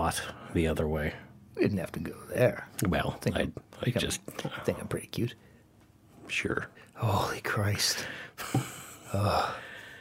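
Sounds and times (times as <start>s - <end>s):
speech: 0.1s - 5.5s, 6.3s - 9.6s
heavy breathing into a microphone: 8.0s - 10.0s.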